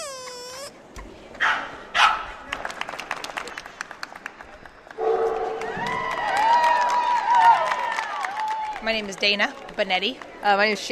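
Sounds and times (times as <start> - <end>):
dogs barking and yipping at a dog show: 1.4 - 2.3
bursts of clapping at a dog show: 2.4 - 10.8
speech: 8.9 - 10.8.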